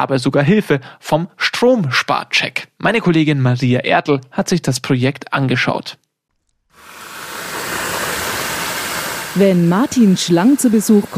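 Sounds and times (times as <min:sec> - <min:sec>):
speech: 0:00.0 - 0:06.0, 0:09.4 - 0:11.1
water gushing from a tap: 0:06.8 - 0:11.1.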